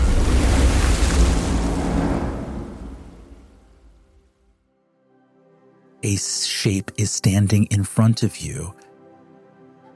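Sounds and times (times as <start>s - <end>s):
burst of rushing water: 0.0s - 4.1s
speech: 6.0s - 8.9s.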